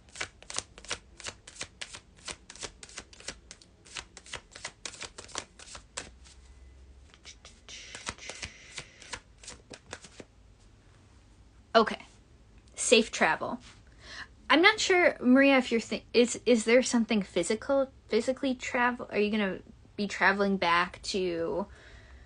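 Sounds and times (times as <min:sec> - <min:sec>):
playing cards being shuffled: 0:00.1 - 0:06.5, 0:07.1 - 0:10.3
speech: 0:11.8 - 0:12.0, 0:12.9 - 0:13.8, 0:14.5 - 0:21.8.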